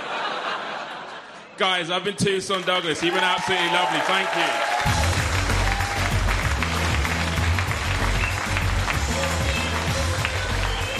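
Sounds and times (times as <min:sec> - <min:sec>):
laughter: 0:00.0 - 0:01.6
speech: 0:01.6 - 0:05.0
audience applause after a comedy set: 0:02.6 - 0:10.9.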